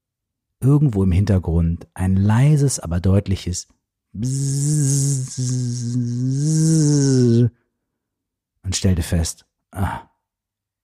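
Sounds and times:
speech: 0:00.6 - 0:07.6, 0:08.7 - 0:10.1
buzz of a fly lost in a house, seemingly imitated by a voice: 0:04.2 - 0:07.5.

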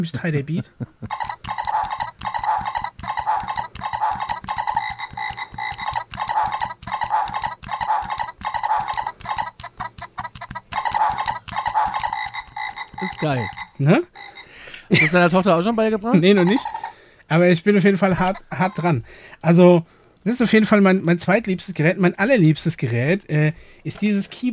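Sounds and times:
speech: 0:00.0 - 0:01.3, 0:13.2 - 0:14.1, 0:14.9 - 0:24.5
children's toy frog croaking: 0:01.1 - 0:17.0
laughter: 0:14.9 - 0:16.7.

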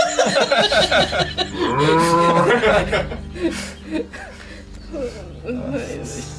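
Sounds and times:
chuckling: 0:00.0 - 0:06.3
cow mooing: 0:01.4 - 0:02.8.

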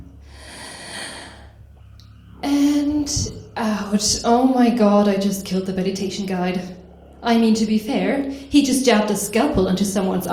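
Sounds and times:
deep breath drawn in during meditation: 0:00.2 - 0:01.9
speech: 0:03.1 - 0:10.3.

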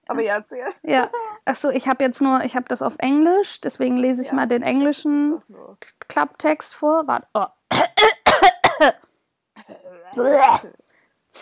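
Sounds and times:
speech: 0:00.1 - 0:07.9, 0:08.8 - 0:09.0, 0:10.1 - 0:10.8
harsh raspy coughs: 0:07.7 - 0:09.0, 0:09.6 - 0:10.8.

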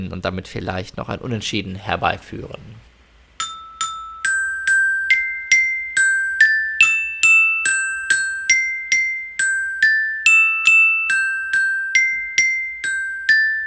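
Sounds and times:
speech: 0:00.0 - 0:02.8
melody played on a glockenspiel: 0:03.4 - 0:13.6.

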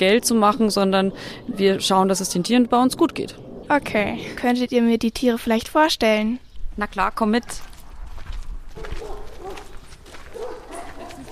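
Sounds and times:
speech: 0:00.0 - 0:07.7
dogs barking at an animal sanctuary: 0:08.8 - 0:11.2.

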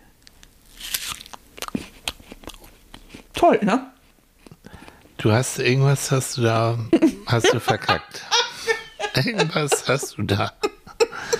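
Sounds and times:
person biting into and chewing a crunchy apple: 0:00.3 - 0:03.2
speech: 0:03.4 - 0:03.9, 0:05.2 - 0:08.4, 0:09.2 - 0:10.6
laughter: 0:07.0 - 0:11.3.

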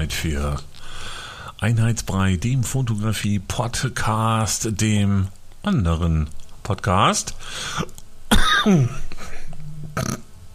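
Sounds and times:
speech: 0:00.0 - 0:08.0, 0:08.6 - 0:09.0, 0:10.0 - 0:10.2
loud harsh throaty cough: 0:08.3 - 0:09.1.

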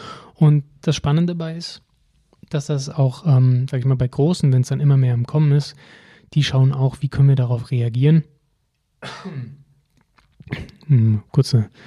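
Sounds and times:
speech: 0:00.4 - 0:08.3, 0:09.0 - 0:09.6, 0:10.5 - 0:11.8
loud harsh cough: 0:09.0 - 0:09.7
short rough throat clearing: 0:09.0 - 0:09.7, 0:10.4 - 0:11.2.

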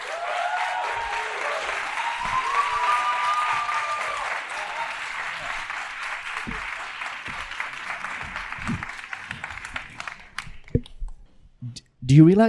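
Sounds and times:
whistle or cheer: 0:00.0 - 0:05.2
large audience applause: 0:00.0 - 0:10.7
speech: 0:12.1 - 0:12.4.

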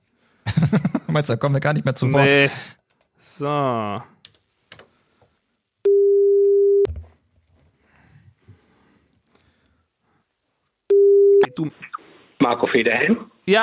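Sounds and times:
laughter: 0:00.5 - 0:01.2
speech: 0:00.6 - 0:02.8, 0:03.4 - 0:04.1, 0:11.6 - 0:11.8, 0:12.4 - 0:13.6
mid-pitched telephone ringback tone while calling: 0:05.9 - 0:06.9, 0:10.9 - 0:11.4.

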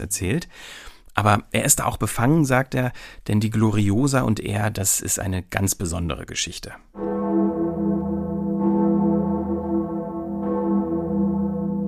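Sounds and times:
speech: 0:00.0 - 0:07.1
great bell of Erfurt Cathedral in Erfurt Germany cast 1497 tolling: 0:07.0 - 0:11.8.

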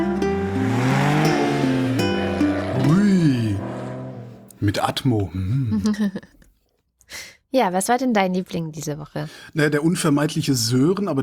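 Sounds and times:
Porsche car engine revving as the car accelerates: 0:00.0 - 0:05.2
speech: 0:04.7 - 0:06.3, 0:07.5 - 0:11.2.

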